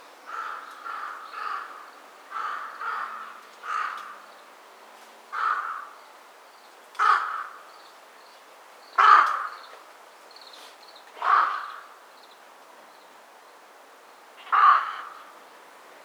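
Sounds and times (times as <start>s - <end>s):
Corvus corone calling: 0.3s - 4.3s, 5.4s - 6.0s, 7.0s - 7.7s, 9.0s - 9.7s, 11.2s - 12.0s, 14.4s - 15.4s.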